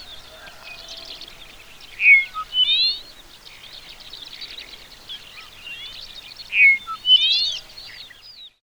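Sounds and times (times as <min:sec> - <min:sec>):
Dupont's lark Chersophilus duponti singing: 0:00.0 - 0:08.4
background bird twittering: 0:00.0 - 0:08.6.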